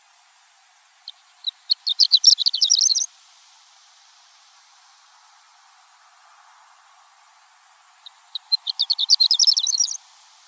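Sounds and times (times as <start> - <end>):
horned lark chirping and twittering: 1.0 - 3.1, 8.0 - 10.0.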